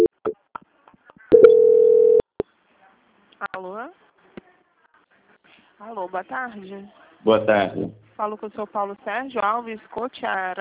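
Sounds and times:
telephone line tone during bank call transfer: 1.3s - 2.2s
speech: 5.9s - 10.5s.

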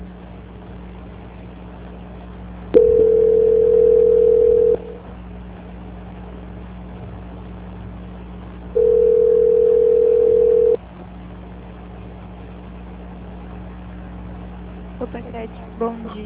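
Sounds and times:
telephone call transfer beeps: 2.8s - 4.9s, 8.8s - 10.8s.

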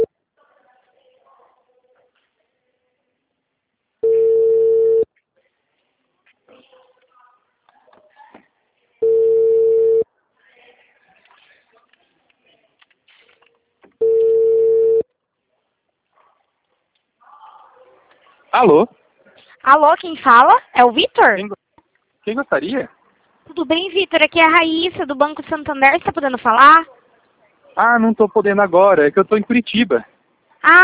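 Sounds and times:
telephone ringback tone while waiting for an answer: 4.0s - 5.1s, 9.0s - 10.0s, 14.0s - 15.0s
speech: 18.6s - 19.0s, 19.7s - 21.6s, 22.3s - 23.0s, 23.6s - 27.0s, 27.8s - 30.8s.

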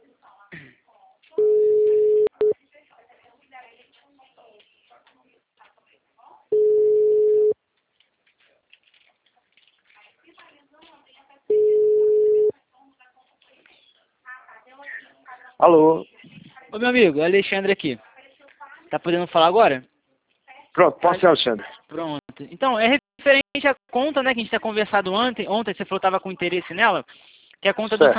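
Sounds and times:
ringback tone of an outgoing telephone call: 1.4s - 2.6s, 6.5s - 7.6s, 11.5s - 12.5s
faint clicks and rustling: 3.7s - 5.9s, 7.7s - 11.3s
speech: 15.6s - 16.1s, 16.7s - 18.0s, 18.9s - 19.9s, 20.8s - 28.1s.

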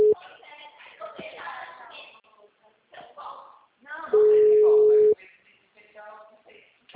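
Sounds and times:
telephone ringback tone of an outgoing call: 4.2s - 5.2s.

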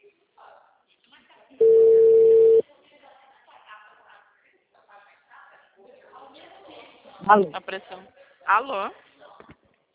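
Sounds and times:
faint noise: 0.0s - 9.9s
telephone ringing tone: 1.6s - 2.6s
speech: 7.3s - 9.1s.

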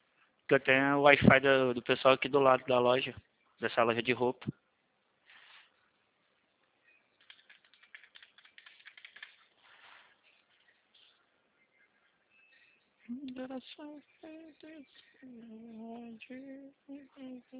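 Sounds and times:
speech: 0.5s - 4.6s, 13.6s - 17.5s
typing on a computer keyboard: 7.2s - 9.5s.

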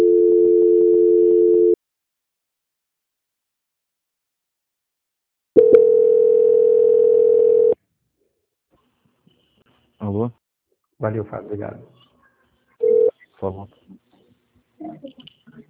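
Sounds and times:
telephone line tone during a call transfer: 0.0s - 1.8s, 5.6s - 7.8s, 12.8s - 13.1s
speech: 11.0s - 12.0s, 13.4s - 14.0s.

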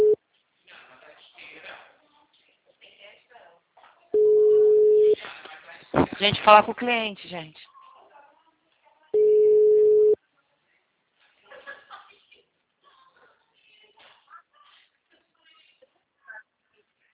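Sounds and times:
telephone ring-back tone on an outgoing call: 4.2s - 5.2s, 9.2s - 10.2s
speech: 6.2s - 7.6s.

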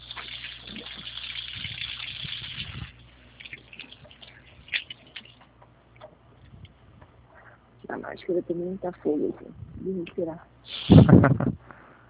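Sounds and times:
hands washed under running tap water: 0.0s - 5.4s
speech: 7.9s - 11.4s.

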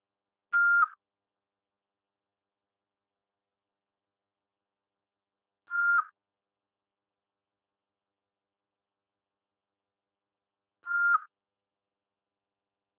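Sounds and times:
voicemail beep tone: 0.6s - 1.0s, 5.7s - 6.1s, 10.9s - 11.3s.

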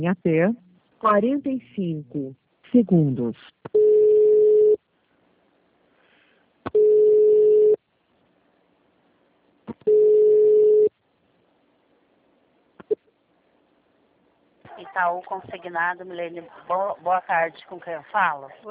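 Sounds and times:
speech: 0.0s - 4.0s, 14.8s - 18.6s
telephone call transfer hold tone buzzing: 3.8s - 4.8s, 6.7s - 7.8s, 9.9s - 10.9s.

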